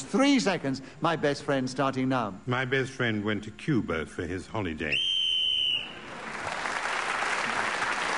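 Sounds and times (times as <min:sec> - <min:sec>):
speech: 0:00.1 - 0:05.1
shrill whistle blast ending a round of a panel game: 0:04.9 - 0:06.1
audience applauding: 0:06.0 - 0:08.1.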